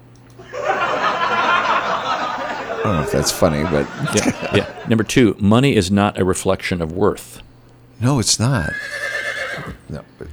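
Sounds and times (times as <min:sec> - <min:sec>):
laughter: 0:00.4 - 0:07.2, 0:08.0 - 0:10.3
speech: 0:02.8 - 0:09.0, 0:09.6 - 0:10.3
horse whinnying with a high quavering cry: 0:08.6 - 0:10.3.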